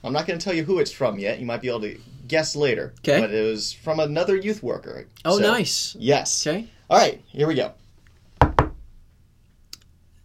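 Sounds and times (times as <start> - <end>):
speech: 0.0 - 7.8
knocks on a hard surface: 8.4 - 8.9.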